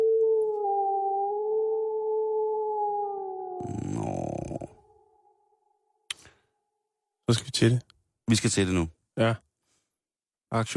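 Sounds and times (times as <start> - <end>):
wolf howling: 0.0 - 5.6
speech: 7.3 - 9.4, 10.5 - 10.7.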